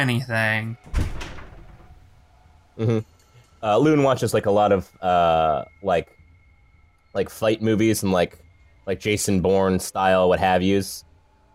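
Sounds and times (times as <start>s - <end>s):
speech: 0.0s - 1.1s, 2.8s - 6.2s, 7.1s - 11.1s
boathouse door opening with a clunk: 0.8s - 2.1s.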